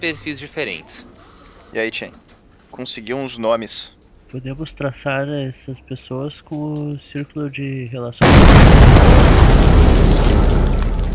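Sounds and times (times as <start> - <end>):
speech: 0.0 - 1.1, 1.7 - 10.4
car explosion with heavy booming roar and deep rumbling: 8.2 - 11.1.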